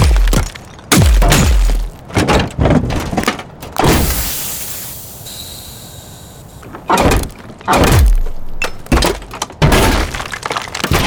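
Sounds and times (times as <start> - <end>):
robot mechanical thunks and clanks: 0.0 - 4.4, 6.6 - 11.0
quieter hissing airy robot servo: 3.8 - 6.6.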